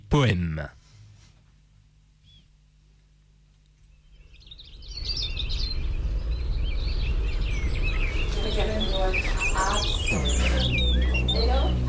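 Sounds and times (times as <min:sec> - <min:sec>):
speech: 0:00.1 - 0:00.8
several birds chirping and singing: 0:03.8 - 0:11.8
low rumble of outdoor ambience: 0:04.5 - 0:11.8.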